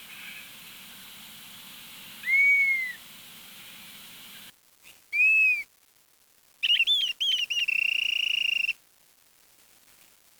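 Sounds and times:
bird call of whistled notes and pulsing trill: 0:00.0 - 0:04.5, 0:06.6 - 0:08.8.

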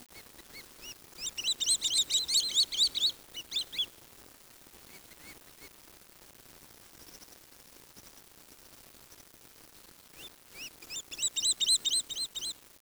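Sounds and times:
bird calls of high squeaky chirping notes: 0:00.5 - 0:03.9, 0:10.6 - 0:12.5.

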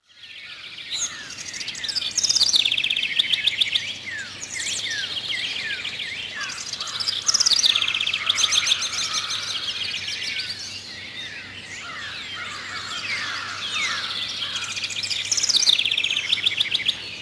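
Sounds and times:
bird calls with high chirps, trills and twittering: 0:00.0 - 0:17.2.

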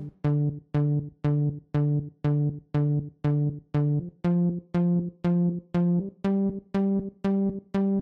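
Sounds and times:
bassline: 0:00.0 - 0:08.0.

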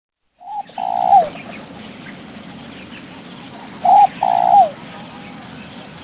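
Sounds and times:
spotted dove cooing: 0:00.4 - 0:02.2, 0:03.4 - 0:05.4
steady high insect-like hiss: 0:00.4 - 0:06.0.

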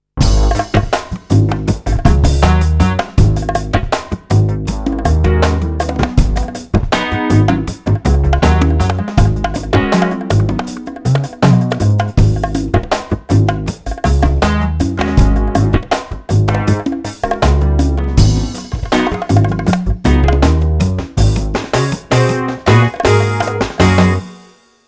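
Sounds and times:
slow bass groove: 0:00.2 - 0:24.3.

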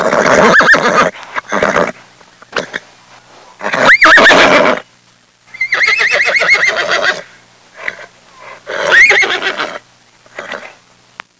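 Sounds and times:
horse neighing: 0:00.0 - 0:02.8, 0:03.6 - 0:04.8, 0:05.6 - 0:08.1, 0:08.7 - 0:10.8.

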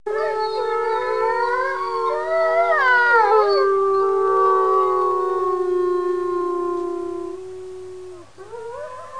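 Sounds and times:
several wolves howling: 0:00.1 - 0:09.1.

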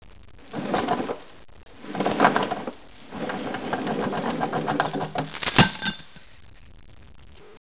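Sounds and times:
chains rattling: 0:01.8 - 0:06.3.

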